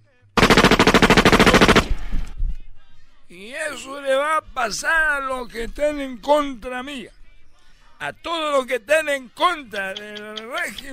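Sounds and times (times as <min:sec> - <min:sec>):
firing squad gunfire at an execution: 0:00.4 - 0:02.2
speech: 0:03.3 - 0:07.2, 0:08.0 - 0:10.9.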